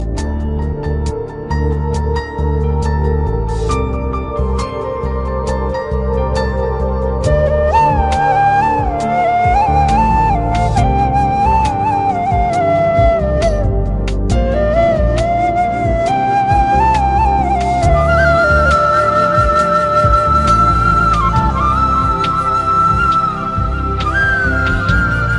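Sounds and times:
soft soothing flute: 0.0s - 25.3s.

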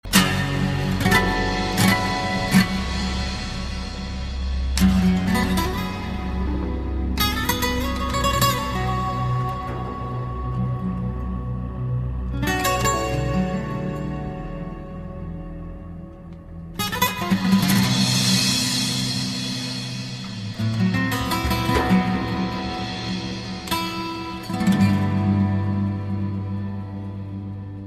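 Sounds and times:
classical guitar: 0.0s - 27.8s.

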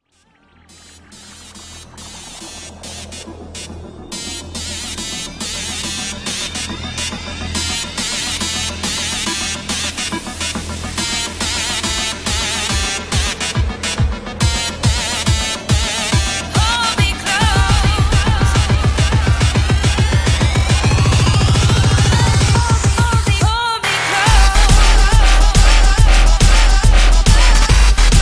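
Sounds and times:
dubstep music: 0.0s - 28.2s.

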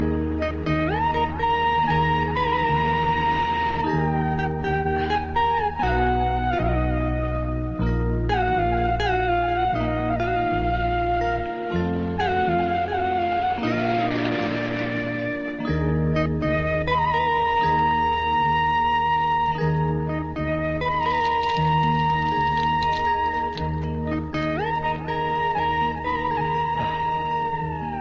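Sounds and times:
Hindi melody: 0.0s - 27.9s.

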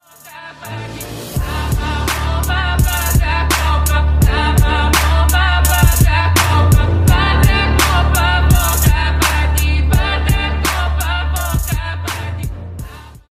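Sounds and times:
Bulgarian trap music: 0.0s - 13.3s.

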